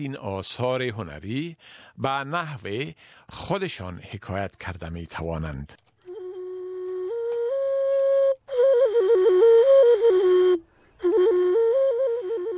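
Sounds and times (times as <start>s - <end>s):
speech: 0.0s - 5.9s
small fired blue-glazed clay vessel flute handmade in Afghanistan playing a melody: 6.0s - 12.5s.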